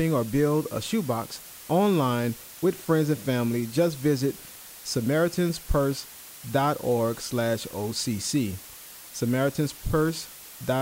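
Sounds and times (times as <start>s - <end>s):
faint electronic microphone hiss: 0.0s - 10.8s
speech: 0.0s - 10.8s.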